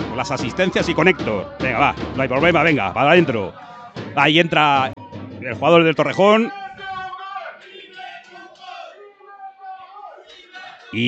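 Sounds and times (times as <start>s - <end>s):
crowd of football fans shouting and chanting: 0.0s - 11.0s
speech: 0.2s - 6.6s.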